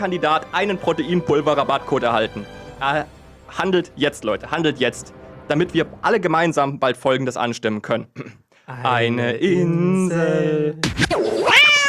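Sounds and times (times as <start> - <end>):
speech: 0.0 - 11.8
cats yowling and caterwauling: 11.4 - 11.8.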